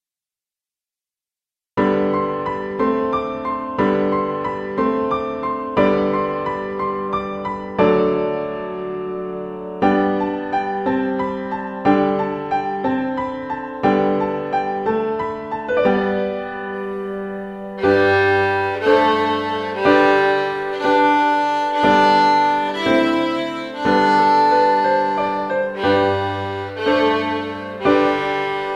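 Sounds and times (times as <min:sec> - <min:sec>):
piano playing: 0:01.8 - 0:28.7
violin playing: 0:17.8 - 0:28.7.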